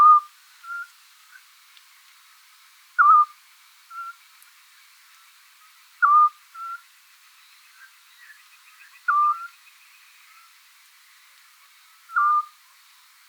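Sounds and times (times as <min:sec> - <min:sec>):
Eurasian scops owl Otus scops calling a short mellow whistle: 0:00.0 - 0:00.9, 0:03.0 - 0:03.3, 0:03.9 - 0:04.2, 0:06.0 - 0:06.8, 0:09.1 - 0:09.5, 0:12.1 - 0:12.5.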